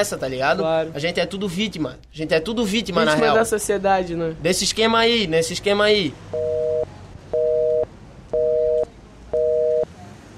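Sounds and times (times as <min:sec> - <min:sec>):
speech: 0:00.0 - 0:07.0
telephone line tone beeping, going to voicemail: 0:06.4 - 0:09.9.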